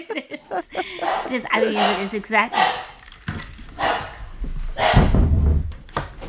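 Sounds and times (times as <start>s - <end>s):
laughter: 0.0s - 2.3s
speech: 0.0s - 2.9s
dogs barking sharply: 0.8s - 3.1s, 3.8s - 5.2s.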